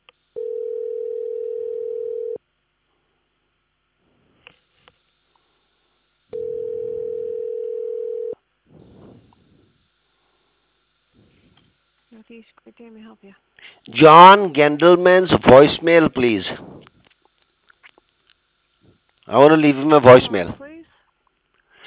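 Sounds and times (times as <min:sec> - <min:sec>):
telephone line ringing tones during a call transfer: 0:00.4 - 0:02.4, 0:06.3 - 0:08.4
speech: 0:12.3 - 0:16.6, 0:19.4 - 0:20.6.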